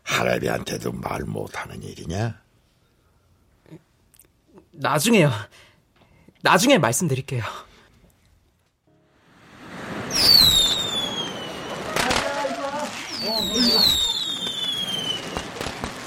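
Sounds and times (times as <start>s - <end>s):
speech: 0.2s - 2.4s, 4.8s - 5.7s, 6.4s - 7.7s
sharp firework bang outdoors: 9.2s - 16.0s
high whistling firework rockets: 9.4s - 16.0s
murmuring: 10.8s - 15.7s.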